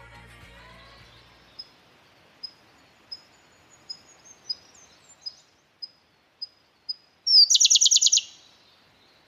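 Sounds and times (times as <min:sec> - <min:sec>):
Siberian blue robin singing: 0:00.6 - 0:09.2.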